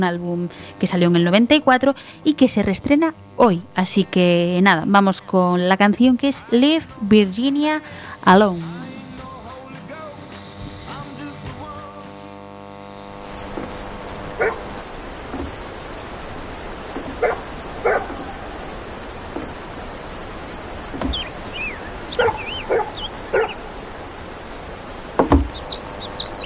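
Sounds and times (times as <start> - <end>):
speech: 0.0 - 8.8
crickets and insects chirping: 0.0 - 26.4
faint bird calls: 13.0 - 26.4
dog barking: 14.3 - 14.7, 17.0 - 18.6, 21.7 - 23.8.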